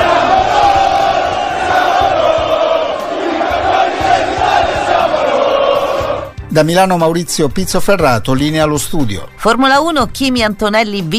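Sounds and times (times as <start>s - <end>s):
thousands of football fans chanting in a square at night: 0.0s - 6.3s
speech: 6.6s - 11.1s.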